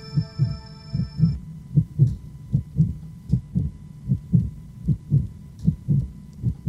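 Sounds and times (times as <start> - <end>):
soft sustained tone: 0.0 - 1.4
heartbeat thumping: 0.2 - 6.6.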